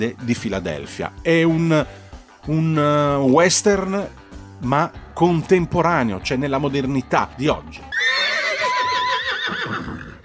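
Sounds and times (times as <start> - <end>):
speech: 0.0 - 7.9
horse neighing: 7.9 - 10.2.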